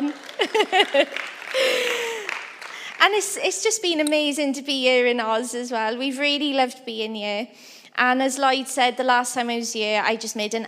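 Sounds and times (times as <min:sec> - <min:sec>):
laughter: 0:00.0 - 0:02.6
audience clapping: 0:00.0 - 0:03.5
speech: 0:00.6 - 0:01.7, 0:03.0 - 0:10.6.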